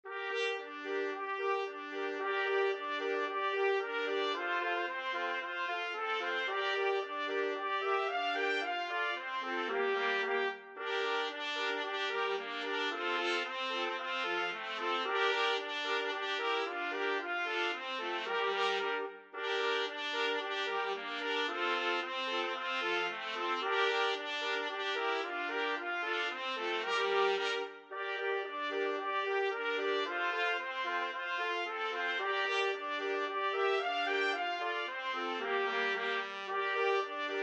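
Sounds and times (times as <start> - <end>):
four trumpets playing: 0.1 - 37.4.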